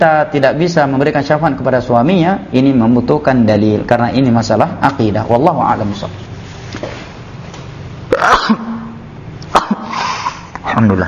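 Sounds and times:
speech: 0.0 - 6.9, 8.2 - 8.6, 10.8 - 11.0
man sneezing during an online religious lecture: 8.1 - 10.6.

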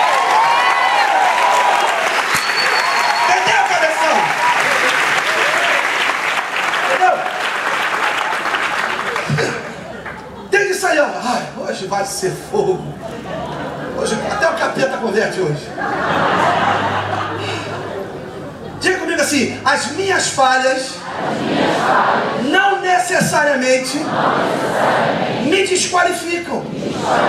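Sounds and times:
church congregation applauding during a service: 0.0 - 10.5
laughter: 3.2 - 5.8, 6.8 - 11.5, 12.5 - 22.5, 26.6 - 27.2
speech: 12.2 - 13.1, 15.0 - 16.2, 19.3 - 27.2.

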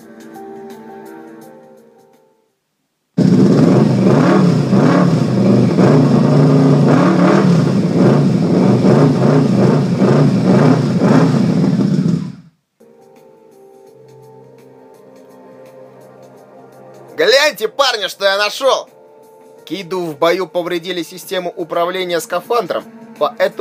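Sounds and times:
engine roaring as a handlebar throttle grip is twisted: 3.2 - 12.5
speech: 17.6 - 19.0, 19.7 - 23.5.

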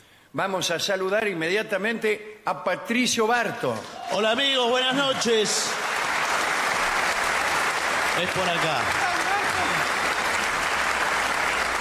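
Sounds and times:
speech: 0.4 - 5.9, 8.2 - 9.0
crowd applause rising into an ovation: 4.0 - 11.7.

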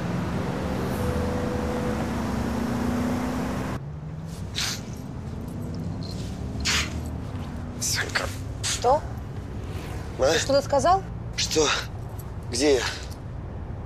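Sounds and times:
car speeding along a highway: 0.0 - 13.8
brief hissing bursts: 4.5 - 4.9
speech: 8.8 - 9.1, 10.2 - 11.9, 12.5 - 13.0.

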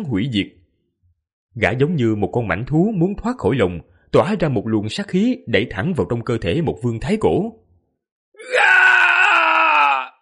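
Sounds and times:
speech: 0.0 - 0.6, 1.6 - 7.6
man screaming in agony as a dramatized story sound effect: 8.4 - 10.1.

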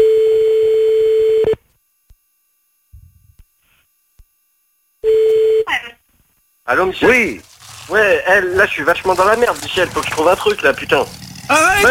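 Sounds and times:
telephone ringback tone while calling someone back: 0.0 - 1.6, 5.0 - 5.7
speech: 6.7 - 11.8.

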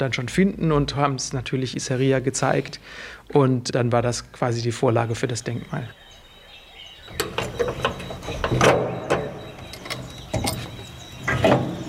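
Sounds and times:
speech: 0.0 - 6.0
museum door being opened with clicks, rattles and clunks: 7.1 - 11.8.

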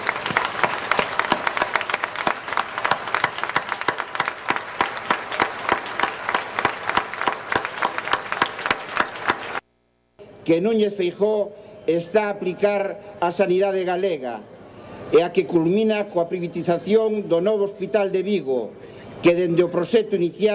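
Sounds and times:
audience applause at a public gathering: 0.0 - 9.6
speech: 10.5 - 14.5, 15.1 - 20.5.

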